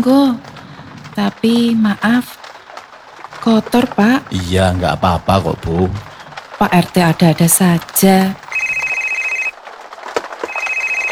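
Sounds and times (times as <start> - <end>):
speech: 0.0 - 0.5, 1.2 - 2.4, 3.4 - 8.4
telephone ringing with a steady electronic tone: 8.2 - 9.6, 10.4 - 11.1.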